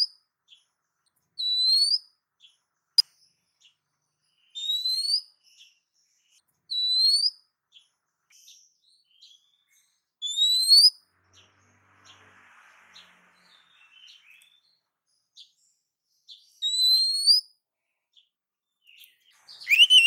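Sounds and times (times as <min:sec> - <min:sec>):
female oriental magpie-robin giving a soft rising whistled call: 0:01.4 - 0:02.1, 0:04.6 - 0:05.3, 0:06.7 - 0:07.4, 0:10.2 - 0:11.0, 0:16.6 - 0:17.5, 0:19.5 - 0:20.0.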